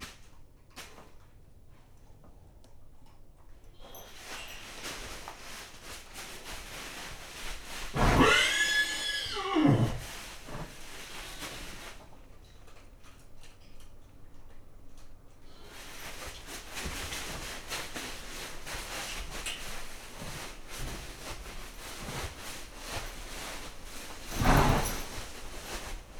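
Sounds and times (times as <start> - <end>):
rustling and shuffling in a stable: 3.1 - 26.1
nervous agitated horse whinnying in a stable on a farmyard: 8.0 - 10.8.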